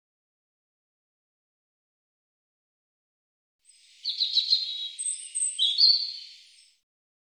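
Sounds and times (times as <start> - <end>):
European robin song high warbling: 3.8 - 6.7.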